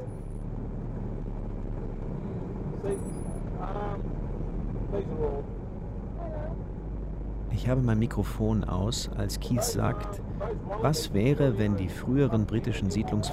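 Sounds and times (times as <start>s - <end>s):
engine and road rumble inside a moving car: 0.0s - 13.3s
brief voices inside a car: 2.8s - 4.1s, 4.8s - 6.7s, 7.5s - 13.3s
speech: 2.8s - 4.2s, 4.9s - 5.6s, 7.5s - 13.3s.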